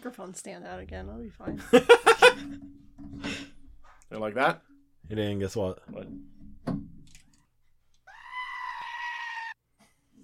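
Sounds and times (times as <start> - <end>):
speech: 0.0 - 3.4, 4.1 - 6.4
laughter: 1.6 - 2.6
goat bleating: 8.1 - 9.6.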